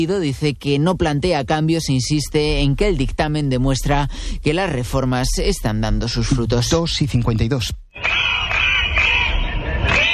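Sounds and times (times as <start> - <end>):
speech: 0.0 - 8.2
crowd of protesting teachers in Catalonia shouting and chanting: 8.0 - 10.1.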